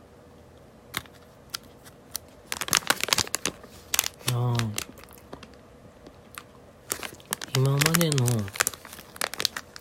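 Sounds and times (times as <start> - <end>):
person chewing a soft grape-flavoured gummy candy: 2.6 - 5.5, 6.2 - 9.7.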